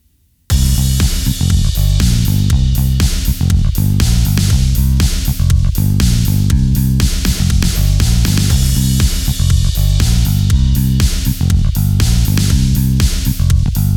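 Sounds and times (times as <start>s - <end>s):
groove music: 0.5s - 13.9s.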